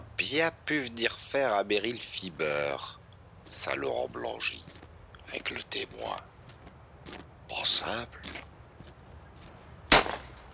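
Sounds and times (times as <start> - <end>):
speech: 0.3 - 6.3, 7.1 - 8.5
gunshot: 9.9 - 10.4.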